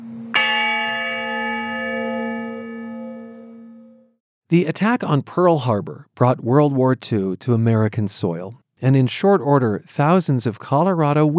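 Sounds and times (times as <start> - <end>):
steady low hum: 0.0 - 4.0
memorial bell tolling for veterans: 0.4 - 4.0
speech: 4.5 - 11.3.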